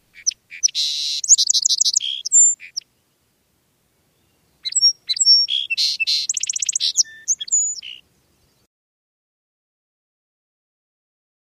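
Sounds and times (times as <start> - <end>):
Song Sparrow singing: 0.0 - 3.2, 4.1 - 8.7.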